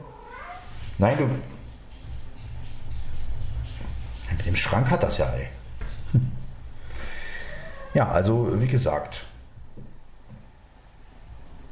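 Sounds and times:
tomcat meowing while playing: 0.0s - 0.8s, 7.4s - 8.2s
speech: 1.0s - 1.6s, 4.6s - 6.3s, 8.0s - 9.3s.

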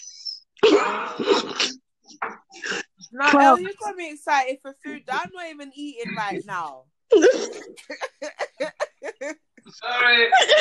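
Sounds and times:
loud low throaty burp: 0.6s - 2.9s
speech: 3.1s - 10.5s
short rhythmic bursts of chuckling laughter: 7.1s - 9.5s.

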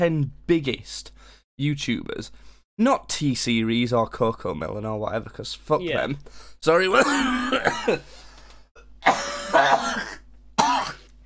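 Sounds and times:
speech: 0.0s - 8.2s
man with lingering COVID coughing harshly: 6.8s - 8.1s, 9.0s - 11.1s.

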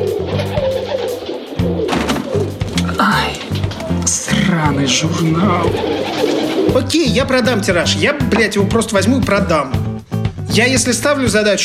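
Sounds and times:
pigeons cooing: 0.0s - 7.1s
speech: 4.7s - 9.8s, 10.5s - 11.6s.

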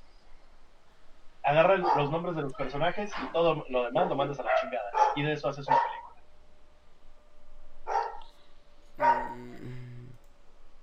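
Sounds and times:
speech: 1.5s - 5.9s
dog barking and yelping: 1.8s - 2.2s, 4.4s - 6.1s, 7.9s - 8.2s, 9.0s - 9.4s.

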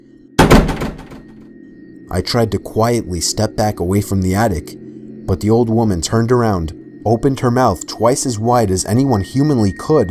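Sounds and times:
hand slamming on a cardboard box: 0.4s - 1.3s
speech: 2.1s - 10.0s.

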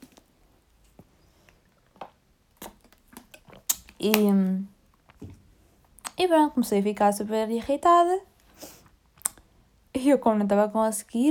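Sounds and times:
person drinking water with soft gulps: 1.6s - 6.2s, 8.8s - 9.6s
speech: 4.0s - 4.7s, 6.2s - 8.7s, 10.0s - 11.3s.

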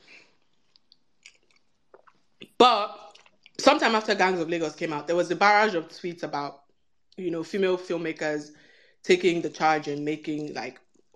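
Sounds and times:
person chewing crunchy food: 0.1s - 3.6s
speech: 2.6s - 3.0s, 3.6s - 6.6s, 7.2s - 11.1s.

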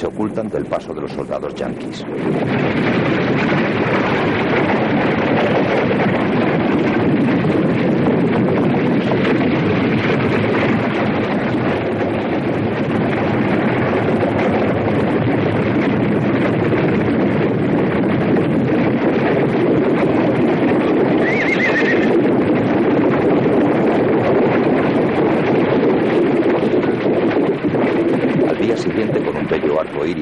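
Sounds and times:
speech: 0.0s - 3.6s
storm with strong wind rushing and buffeting: 0.0s - 30.2s.

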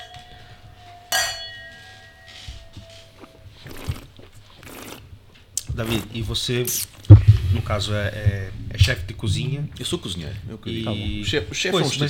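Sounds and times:
glasses clinking in a toast: 0.0s - 3.4s
speech: 5.8s - 12.0s.

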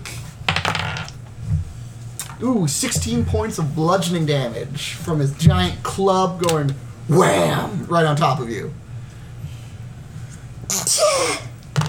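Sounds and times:
low steady hum: 0.0s - 11.8s
speech: 2.4s - 8.8s
person sneezing: 10.7s - 11.5s.

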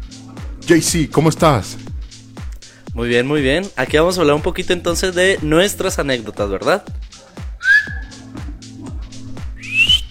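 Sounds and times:
low thumping beat: 0.0s - 10.1s
speech: 0.7s - 1.8s, 3.0s - 7.0s
person attempting to whistle: 7.6s - 8.2s, 9.6s - 10.1s.

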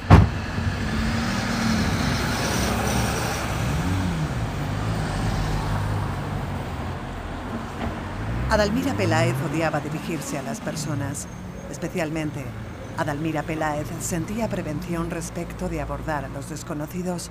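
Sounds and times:
sharp bump: 0.0s - 3.6s
car engine rumbling while driving past: 0.0s - 16.4s
steady road noise: 0.0s - 17.2s
speech: 8.5s - 17.2s.

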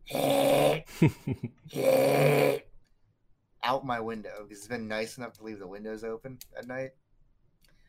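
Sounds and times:
person imitating a deer snorting: 0.0s - 0.9s, 1.7s - 2.6s
laughter: 0.9s - 1.7s
speech: 1.0s - 2.7s, 3.7s - 7.0s.

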